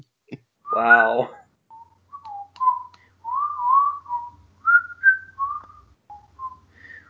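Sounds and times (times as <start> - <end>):
speech: 0.8 - 1.4
person whistling a bouncy melody: 1.7 - 7.0.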